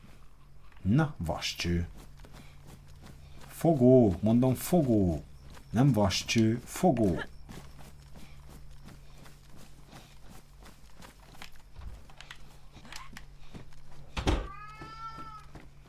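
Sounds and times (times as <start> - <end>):
speech: 0.8 - 2.1, 3.6 - 7.3
cat meowing: 14.4 - 15.6.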